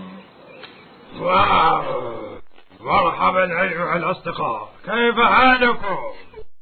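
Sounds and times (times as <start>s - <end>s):
lion roaring in a forest: 1.1s - 3.4s
speech: 1.2s - 6.3s.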